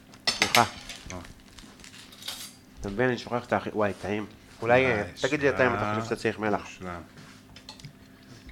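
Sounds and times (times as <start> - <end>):
cutlery clinking as it is handled: 0.2 - 1.1, 1.8 - 2.6
speech: 0.6 - 1.3, 2.8 - 7.2.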